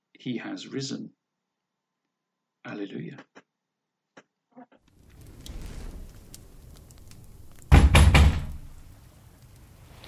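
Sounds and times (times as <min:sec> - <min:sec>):
speech: 0:00.2 - 0:01.2, 0:02.6 - 0:03.4
heavy knocks on a door: 0:07.7 - 0:08.5.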